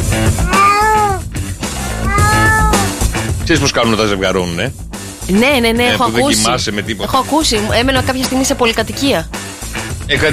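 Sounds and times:
cat meowing: 0:00.4 - 0:01.3, 0:01.9 - 0:03.0
speech: 0:03.5 - 0:10.3.

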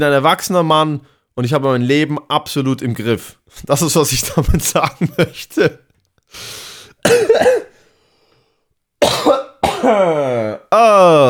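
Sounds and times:
speech: 0:00.0 - 0:07.6
man with mucus in his lungs in a heavy chesty coughing fit: 0:07.0 - 0:07.8, 0:09.0 - 0:10.7.

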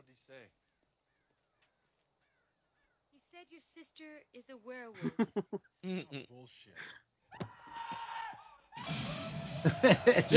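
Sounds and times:
speech: 0:03.4 - 0:07.4, 0:09.6 - 0:10.3
laughter: 0:05.0 - 0:06.9, 0:09.6 - 0:10.3
girl screaming in movie clip: 0:07.4 - 0:08.6
loud dense noisy commotion: 0:07.4 - 0:10.3.

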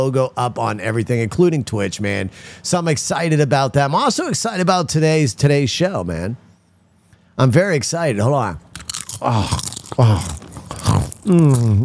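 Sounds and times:
speech: 0:00.0 - 0:06.4, 0:07.4 - 0:10.4, 0:11.2 - 0:11.8
person chewing food: 0:08.7 - 0:11.8
person humming with enjoyment: 0:09.2 - 0:11.8.

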